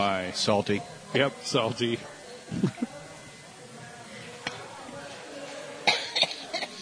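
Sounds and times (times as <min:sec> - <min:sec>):
speech: 0:00.0 - 0:02.9
short harsh coughs: 0:05.9 - 0:06.8.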